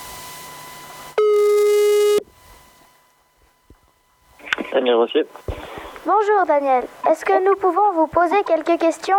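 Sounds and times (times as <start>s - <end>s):
steady telephone line tone while placing a call: 0.0s - 5.6s
faint telephone line hiss: 0.0s - 9.0s
speech: 4.8s - 5.5s, 6.1s - 9.1s.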